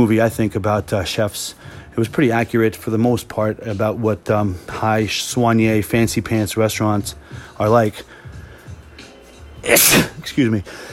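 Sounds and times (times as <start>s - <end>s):
speech: 0.0s - 8.2s, 9.6s - 10.9s
person sneezing loudly: 9.6s - 10.2s.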